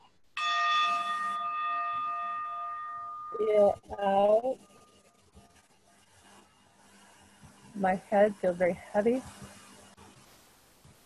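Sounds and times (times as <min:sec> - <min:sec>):
meditation bell ringing: 0:00.4 - 0:04.4
speech: 0:03.4 - 0:04.7, 0:07.8 - 0:09.6.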